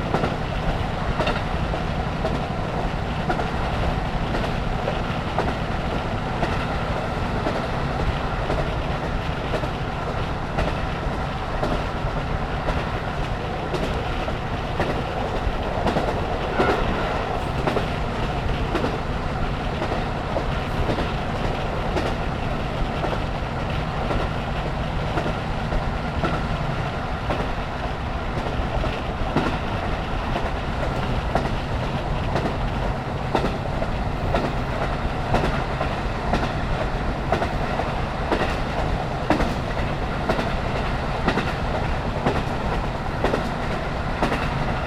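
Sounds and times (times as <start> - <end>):
diesel railcar engine drone: 0.0 - 44.8
rhythmic diesel railcar wheel clatter on rail joints: 0.0 - 44.8
wind rush through an open train window: 0.0 - 44.8.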